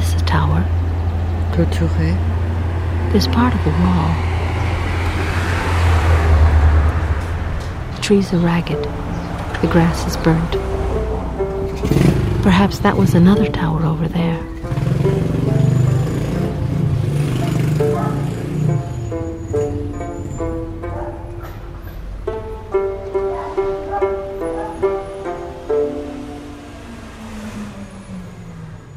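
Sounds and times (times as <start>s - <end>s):
bus engine rumbling and idling at Thebes: 0.0s - 28.9s
speech: 1.6s - 2.4s, 3.1s - 4.3s, 8.1s - 10.8s, 11.8s - 14.6s.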